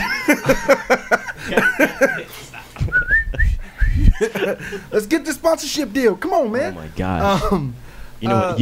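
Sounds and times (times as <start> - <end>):
person chuckling: 0.0 - 4.9
speech: 0.3 - 2.5, 4.2 - 8.5
rhythmic voiced sounds: 1.5 - 8.5
person whistling a tune: 2.9 - 4.1.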